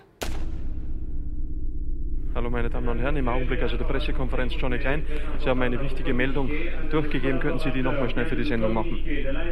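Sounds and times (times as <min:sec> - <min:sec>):
single sharp gunshot at an airfield: 0:00.2 - 0:01.0
steady loud low rumble: 0:00.2 - 0:09.5
speech: 0:02.4 - 0:09.5.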